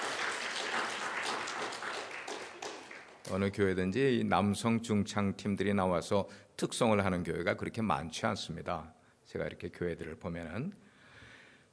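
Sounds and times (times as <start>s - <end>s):
church congregation applause: 0.0s - 3.3s
speech: 3.3s - 10.9s.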